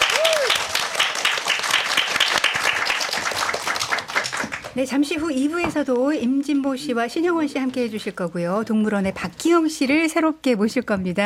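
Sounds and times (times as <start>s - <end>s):
studio audience applause: 0.0s - 4.8s
speech: 4.8s - 11.2s.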